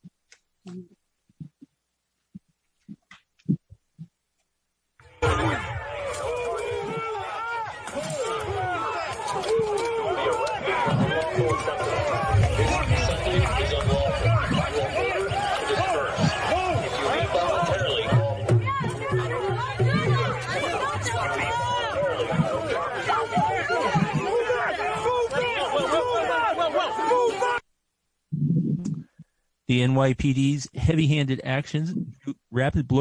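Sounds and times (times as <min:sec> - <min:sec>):
speech: 0:00.7 - 0:01.0, 0:29.7 - 0:32.9
dense crowd shouting and yelling during police clearing of Washington Square Park: 0:05.0 - 0:27.6.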